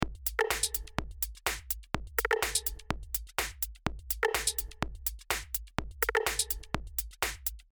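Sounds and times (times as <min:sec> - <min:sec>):
music loop with TrackSpacer and tweaked HPF: 0:00.1 - 0:03.3, 0:03.9 - 0:05.0, 0:05.8 - 0:07.1.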